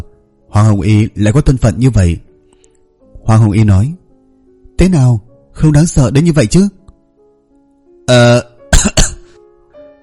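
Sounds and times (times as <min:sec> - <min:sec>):
speech: 0:00.7 - 0:02.3, 0:03.3 - 0:04.0, 0:04.8 - 0:06.8, 0:08.1 - 0:08.5
person dry coughing and throat-clearing: 0:08.2 - 0:09.4.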